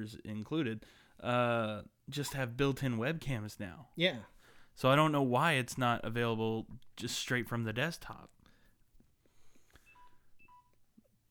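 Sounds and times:
speech: 0.0s - 8.4s
smartphone low battery alert beeps: 9.9s - 10.8s.

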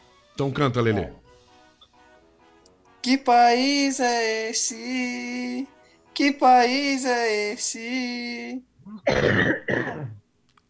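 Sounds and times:
speech: 0.4s - 1.2s, 3.0s - 10.2s
person coughing harshly with a throaty rasp: 8.8s - 10.2s.

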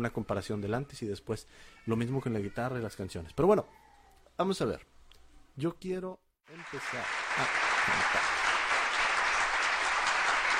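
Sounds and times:
speech: 0.0s - 3.8s, 4.4s - 4.9s, 5.6s - 8.5s
crowd applauding: 6.5s - 10.5s.

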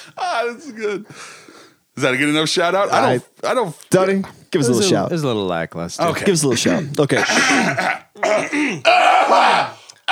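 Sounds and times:
speech: 0.3s - 9.8s
throat clearing: 7.2s - 8.9s.

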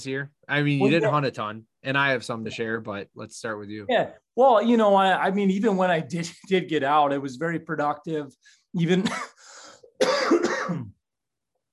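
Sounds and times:
speech: 0.0s - 11.0s
man coughing: 9.0s - 11.0s.

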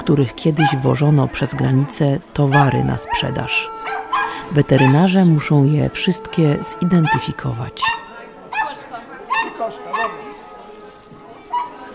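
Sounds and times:
speech: 0.0s - 3.8s, 4.5s - 8.0s, 9.6s - 10.2s
dog barking: 0.6s - 1.0s, 2.5s - 5.1s, 7.0s - 10.2s.

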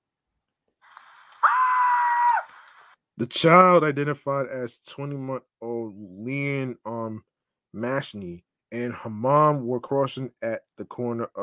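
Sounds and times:
woman screaming in a long piercing shriek: 1.4s - 2.5s
speech: 3.2s - 11.4s.

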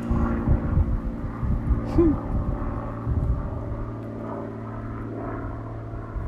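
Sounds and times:
propeller airplane passing overhead: 0.0s - 6.2s
faint voice murmuring: 1.8s - 2.3s.

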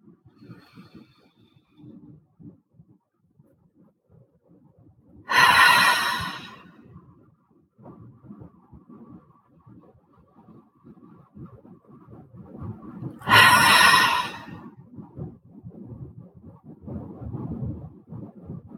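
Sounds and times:
deep cleansing breath: 5.3s - 6.7s, 13.2s - 14.6s.

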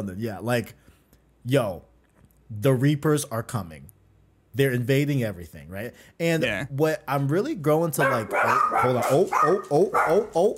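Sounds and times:
speech: 0.0s - 1.9s, 2.5s - 3.9s, 4.5s - 10.5s
dog barking: 8.0s - 10.4s.

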